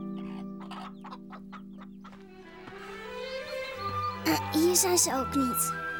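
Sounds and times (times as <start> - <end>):
chicken squawking: 0.2 - 1.4
chicken clucking: 0.2 - 2.2
speech: 4.2 - 5.8.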